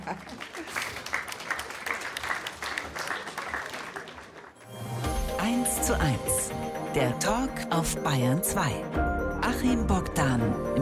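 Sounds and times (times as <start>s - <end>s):
speech: 0.0s - 0.7s, 5.9s - 10.8s
audience applause: 0.0s - 4.7s.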